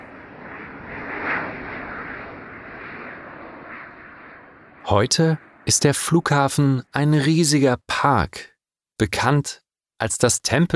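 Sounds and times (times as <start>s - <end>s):
low-flying airplane engine roaring overhead: 0.0s - 7.0s
speech: 4.9s - 10.7s.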